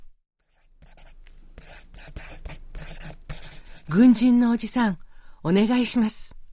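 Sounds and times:
pencil scratching across paper: 0.4s - 4.1s
speech: 3.9s - 6.2s.

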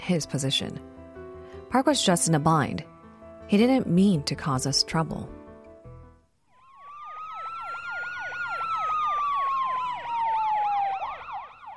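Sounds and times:
speech: 0.1s - 1.0s, 1.7s - 2.9s, 3.5s - 5.4s
police car siren fast warbling yelp: 6.6s - 11.7s.

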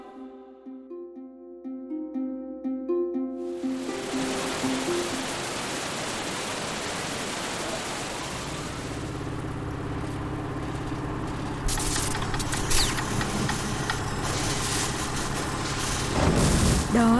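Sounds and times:
soft melodic notes: 0.0s - 5.6s
loud steady roar of rushing water: 3.5s - 9.7s, 12.8s - 17.1s
electric generator engine running: 8.0s - 17.1s.

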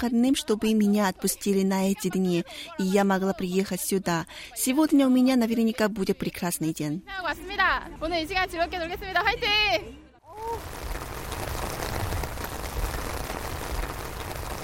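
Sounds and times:
speech: 0.0s - 10.8s
heavy rain downpour on a city: 10.3s - 14.6s.

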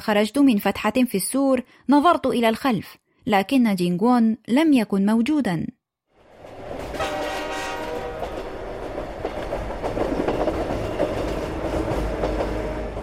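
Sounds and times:
speech: 0.0s - 5.8s
train roaring past with rattling wheels: 6.2s - 13.0s
long train horn blast: 6.9s - 8.6s.

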